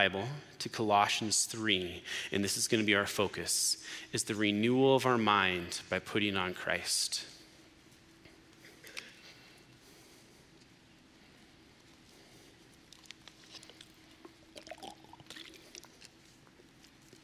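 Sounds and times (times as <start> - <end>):
speech: 0.0 - 7.3
quiet hum: 0.0 - 17.2
person sipping water from a glass: 12.9 - 17.2.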